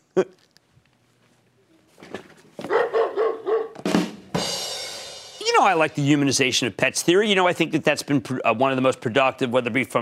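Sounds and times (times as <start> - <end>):
speech: 0.2 - 0.4, 5.6 - 10.0
dog barking: 2.6 - 3.8.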